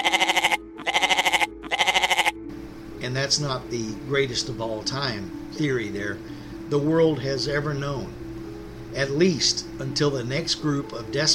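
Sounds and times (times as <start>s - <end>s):
goat bleating with a shaky vibrato: 0.0s - 2.4s
speech: 3.1s - 8.2s, 9.0s - 11.3s.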